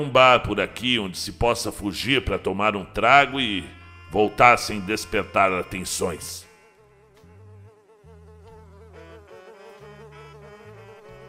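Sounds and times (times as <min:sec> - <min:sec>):
speech: 0:00.0 - 0:06.5
housefly buzzing: 0:03.4 - 0:11.2.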